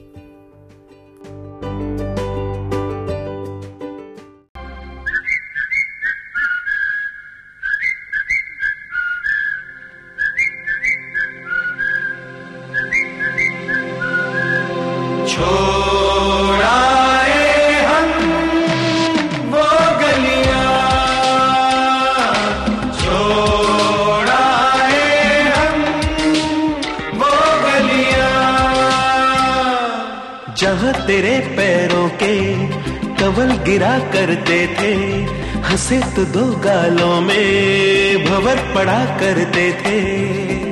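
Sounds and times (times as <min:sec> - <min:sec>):
light instrumental accompaniment of a Hindi film song: 0:00.0 - 0:05.1, 0:16.6 - 0:29.7, 0:30.6 - 0:40.7
whistled melody in a Hindi film song: 0:04.8 - 0:15.0
fuller orchestral music in a Hindi film song: 0:11.4 - 0:29.7
speech: 0:33.4 - 0:40.3.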